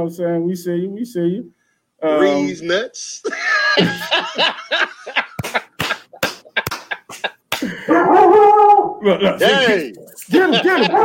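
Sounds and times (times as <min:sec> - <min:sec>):
speech: 0:00.0 - 0:05.2, 0:07.9 - 0:11.0
snickering laughter: 0:03.2 - 0:07.9, 0:10.3 - 0:11.0
dogs barking in the house: 0:07.8 - 0:09.0, 0:10.6 - 0:11.0.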